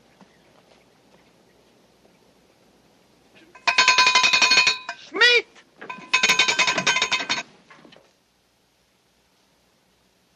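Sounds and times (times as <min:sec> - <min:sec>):
hand bell rung to call for supper: 0:03.6 - 0:05.0, 0:05.9 - 0:07.4.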